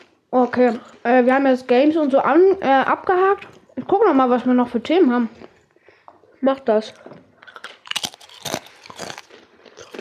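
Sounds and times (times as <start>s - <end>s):
chewing and crackling: 0.0s - 2.3s, 3.0s - 9.9s
speech: 0.4s - 5.4s, 6.4s - 7.2s
crackers being eaten: 7.4s - 9.9s.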